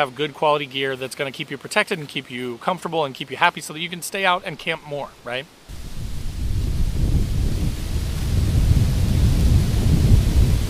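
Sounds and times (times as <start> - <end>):
speech: 0.0 - 5.8
strong wind gusting against the microphone: 5.7 - 10.6.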